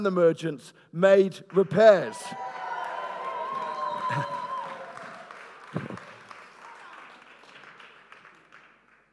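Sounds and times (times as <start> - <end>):
speech: 0.0 - 2.6, 4.1 - 4.4
crowd applauding: 1.5 - 9.1
crowd cheering: 1.9 - 7.6.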